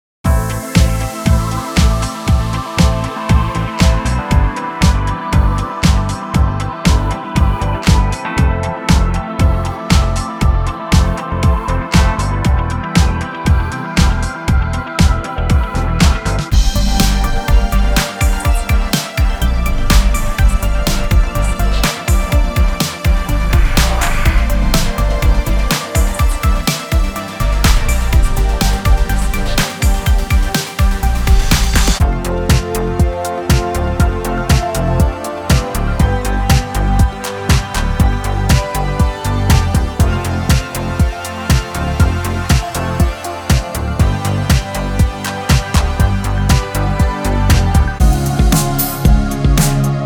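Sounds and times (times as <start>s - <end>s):
80s retro synth pop music: 0.3s - 50.0s.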